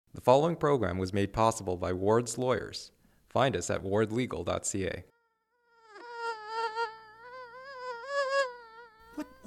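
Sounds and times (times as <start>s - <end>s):
speech: 0.2s - 5.1s
mosquito buzzing indoors in winter: 5.1s - 9.4s.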